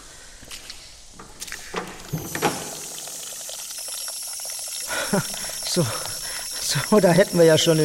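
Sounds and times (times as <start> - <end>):
footsteps: 0.4 - 3.0
clunks: 1.2 - 2.9
water running from a washing machine in a house cellar: 1.4 - 7.8
hissing water spray: 2.6 - 7.8
speech: 5.1 - 6.1, 6.7 - 7.8.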